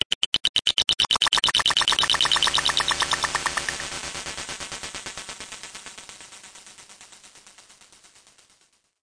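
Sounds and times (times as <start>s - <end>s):
insectoid clicking: 0.0s - 3.9s.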